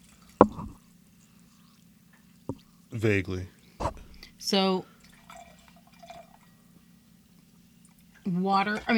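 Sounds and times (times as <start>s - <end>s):
carbonated soda fizzing: 0.0s - 2.9s, 4.9s - 6.6s
low steady hum: 0.0s - 8.9s
speech: 3.0s - 3.6s, 4.4s - 4.9s, 8.4s - 8.9s.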